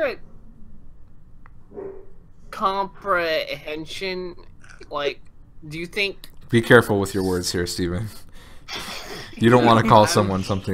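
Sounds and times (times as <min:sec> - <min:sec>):
speech: 0:00.0 - 0:00.3, 0:02.6 - 0:10.7
low steady hum: 0:00.0 - 0:10.7
dog barking: 0:01.7 - 0:02.2.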